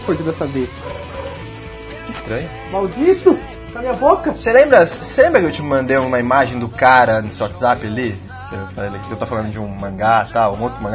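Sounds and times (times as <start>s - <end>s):
speech: 0.0s - 1.0s, 2.3s - 10.9s
dog barking: 0.1s - 1.5s.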